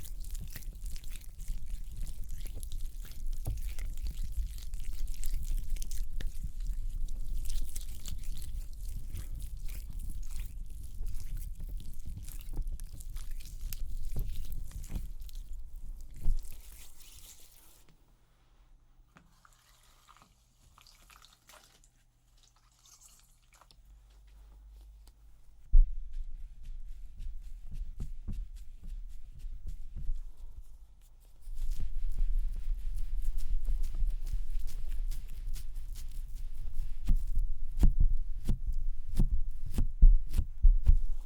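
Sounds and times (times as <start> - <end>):
wet rubbing and squishing of makeup cleansing: 0.0 - 17.9, 26.1 - 41.2.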